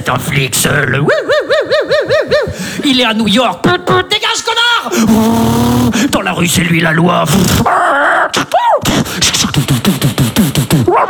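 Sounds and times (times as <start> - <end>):
speech: 0.0 - 11.0
laughter: 0.6 - 4.1, 4.8 - 6.2, 7.1 - 11.0
harsh rumbling tone: 5.0 - 6.2
dog barking rapidly: 10.9 - 11.0.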